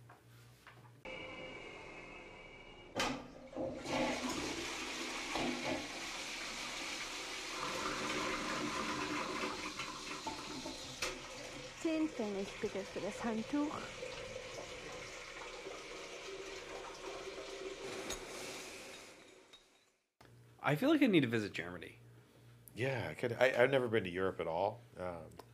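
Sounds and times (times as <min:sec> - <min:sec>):
German toilet flushing and refilling: 0:01.1 - 0:19.5
speech: 0:12.2 - 0:14.0, 0:20.7 - 0:22.0, 0:22.8 - 0:25.5.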